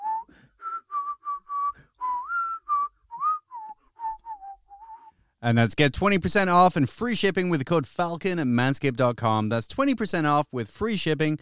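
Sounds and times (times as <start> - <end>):
person whistling a bouncy tune: 0.0 - 5.1
short breaths between whistled phrases: 0.1 - 0.9, 1.6 - 2.2
speech: 5.4 - 11.4.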